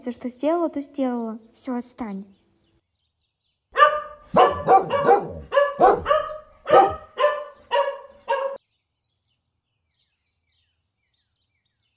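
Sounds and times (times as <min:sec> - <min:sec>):
speech: 0:00.0 - 0:02.4
dogs barking and yipping while playing together: 0:03.8 - 0:08.6.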